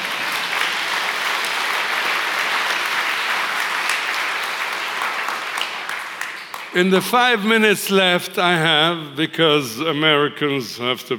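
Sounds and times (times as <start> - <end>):
large crowd applauding: 0.0 - 6.9
speech: 6.8 - 11.1.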